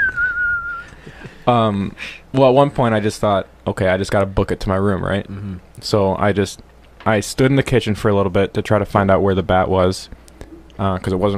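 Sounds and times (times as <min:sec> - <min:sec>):
person whistling a long clear downward-gliding note: 0:00.0 - 0:00.9
speech: 0:01.5 - 0:10.2, 0:10.8 - 0:11.3.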